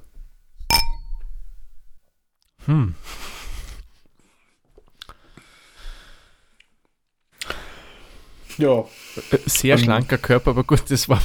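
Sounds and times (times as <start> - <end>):
glasses clinking in a toast: 0.7 - 1.4
speech: 2.6 - 3.2, 8.6 - 11.2.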